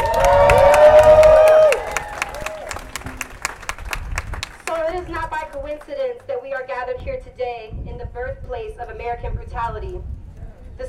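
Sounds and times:
crowd at a rally cheering and shouting: 0:00.0 - 0:02.8
scattered clapping: 0:00.0 - 0:06.4.

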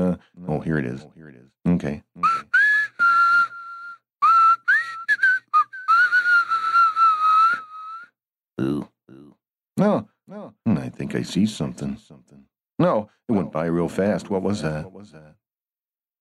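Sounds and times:
speech: 0:00.2 - 0:02.4, 0:09.8 - 0:10.1, 0:10.9 - 0:15.3
whistle blown loudly: 0:02.2 - 0:08.1.

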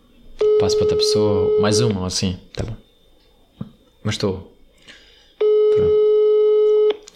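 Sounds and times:
unanswered phone call ringing electronic tone: 0:00.4 - 0:02.1, 0:05.4 - 0:07.0
speech: 0:00.6 - 0:02.8, 0:04.0 - 0:04.5.

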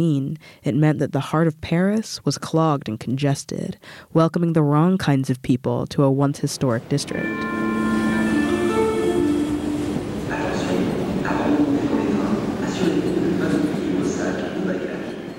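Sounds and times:
speech: 0:00.0 - 0:07.6
continuous rumble of rail noise in an underground train station: 0:06.9 - 0:15.3
tonal whines and squeals from a train: 0:07.0 - 0:15.3.

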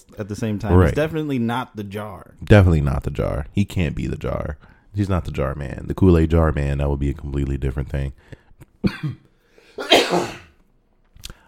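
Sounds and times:
speech: 0:00.0 - 0:09.2, 0:09.8 - 0:10.4
person coughing harshly: 0:08.8 - 0:10.6.

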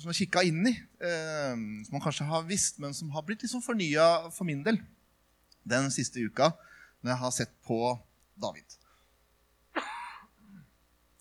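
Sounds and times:
speech: 0:00.0 - 0:05.0, 0:05.6 - 0:08.8
harsh cough with throaty rasp: 0:09.8 - 0:10.7.

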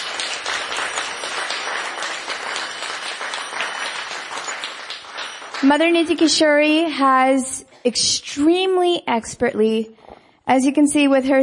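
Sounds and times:
room full of people applauding: 0:00.0 - 0:06.2
speech: 0:05.6 - 0:11.4.

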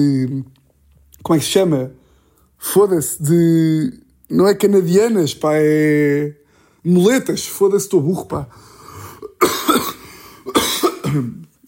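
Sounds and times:
speech: 0:00.0 - 0:00.6, 0:01.2 - 0:02.0, 0:02.6 - 0:08.7, 0:11.1 - 0:11.6
harsh coughs: 0:09.1 - 0:11.5.

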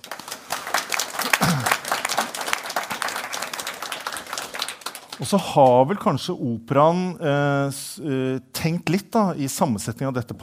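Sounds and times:
audience applauding: 0:00.0 - 0:06.0
speech: 0:05.2 - 0:10.4.

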